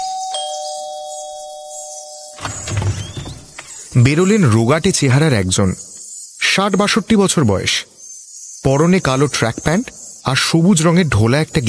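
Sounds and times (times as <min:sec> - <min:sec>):
electronic doorbell ringing at a one-storey wooden house: 0:00.0 - 0:02.4
speech: 0:04.0 - 0:05.9, 0:06.6 - 0:07.9, 0:08.6 - 0:11.6.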